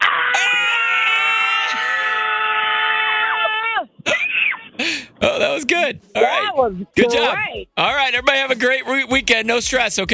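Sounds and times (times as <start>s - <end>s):
group of people screaming together: 0.0s - 4.7s
speech: 5.7s - 10.1s.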